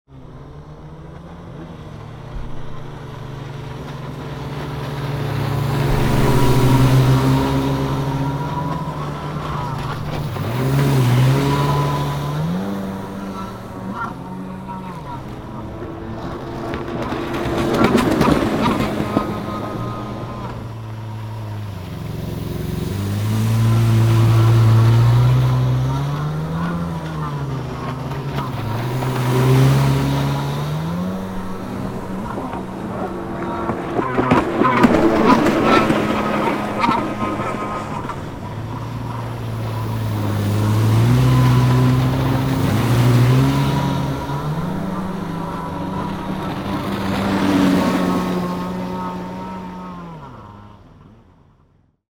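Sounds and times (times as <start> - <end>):
stationary Kawasaki SX R jet ski engine: 0.0 - 52.0.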